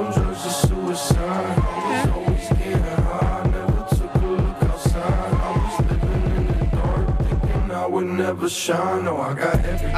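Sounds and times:
hip hop track with electronic touches: 0.0 - 9.9
steady thumping bass beat: 0.1 - 7.7, 9.6 - 9.9
speech: 8.3 - 9.9.

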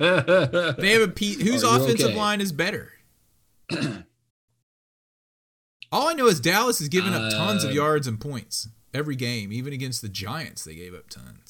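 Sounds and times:
speech: 0.0 - 3.0, 3.7 - 4.0, 5.9 - 11.4
rough throat clearing after vomit rose in the throat: 3.7 - 4.1.

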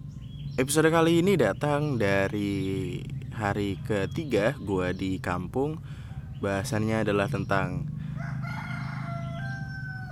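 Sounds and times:
steady low rumbling hum: 0.0 - 10.0
speech: 0.6 - 7.9
rooster crowing: 8.0 - 10.0.

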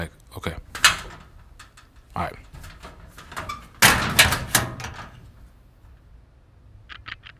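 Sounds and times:
metal school locker door clanging shut: 0.7 - 5.5
speech: 2.2 - 2.4.

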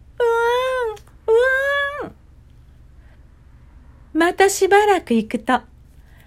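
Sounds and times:
voice imitating a child's crying wail: 0.2 - 2.2
speech: 4.2 - 5.7.

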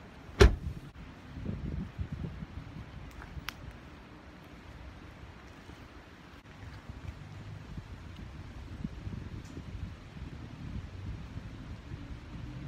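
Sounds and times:
car door opening with a sharp click: 0.3 - 0.9
steady wind noise buffeting the microphone: 0.5 - 3.9, 6.8 - 12.6.

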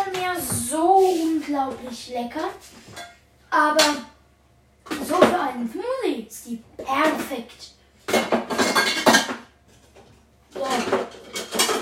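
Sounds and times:
speech: 0.8 - 4.1, 5.1 - 7.8, 10.6 - 11.2
kitchen equipment clinking and clattering as a blender is pulled out: 8.1 - 9.5, 10.6 - 11.8.

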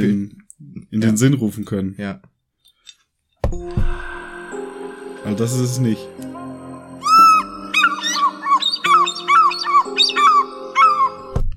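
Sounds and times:
speech: 0.0 - 2.3, 5.2 - 6.3
white-headed bird giving gull-like screeching calls: 7.0 - 11.3.

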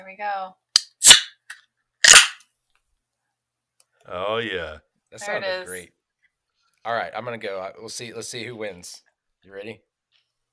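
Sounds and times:
speech: 0.0 - 0.6, 4.0 - 6.0, 6.8 - 9.9
beer can or bottle opening with a sharp snap: 0.8 - 2.4.

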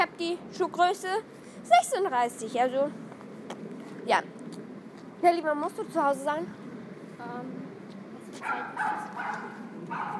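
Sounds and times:
speech: 0.0 - 3.0, 4.0 - 4.6, 5.2 - 6.6, 7.2 - 7.6, 8.4 - 10.1
dog barking in short yaps: 8.4 - 10.1.

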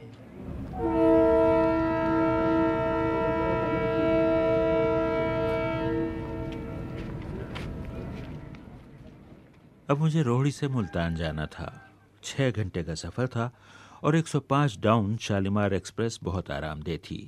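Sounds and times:
moving train rumble: 0.0 - 10.2
train horn blast: 0.7 - 8.2
speech: 9.9 - 17.2.

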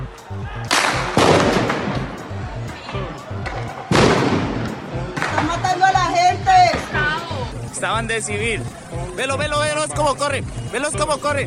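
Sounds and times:
agitated shouting voices in a street: 0.0 - 1.2, 2.3 - 4.0, 4.8 - 11.4
gunshots as police open fire on people in a street: 0.7 - 2.2, 3.9 - 5.6
speech: 7.8 - 11.4.

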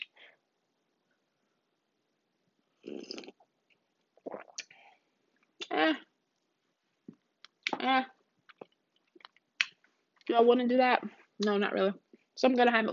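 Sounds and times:
blowing on hot coffee: 2.8 - 3.3
slurping sips of hot coffee: 2.8 - 3.4
speech: 2.9 - 3.4, 10.4 - 12.9.

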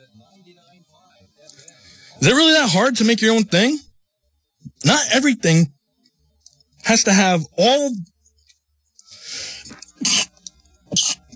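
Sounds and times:
speech: 2.2 - 3.8, 4.8 - 5.8, 6.9 - 8.1
drawn-in breath before sneezing: 9.1 - 10.3
person sneezing: 9.3 - 11.3.

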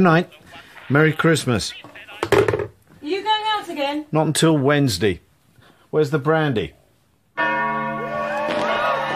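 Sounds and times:
speech: 0.0 - 5.2, 5.9 - 6.8
church bells ringing in the new year of 1968: 7.4 - 9.1.

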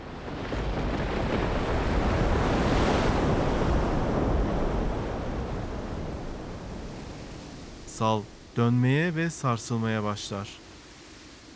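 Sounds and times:
gusty wind rush: 0.0 - 8.6
ocean waves surging: 0.0 - 11.5
speech: 8.0 - 10.6.

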